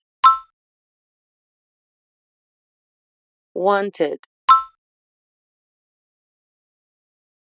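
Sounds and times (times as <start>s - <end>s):
speech: 3.6s - 4.3s
short beep: 4.5s - 4.7s.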